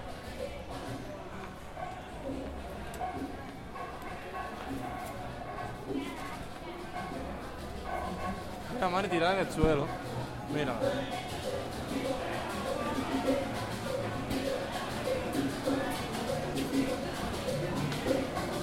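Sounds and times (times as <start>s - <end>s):
overlapping chatter of people on a street stroll: 0.0s - 18.6s.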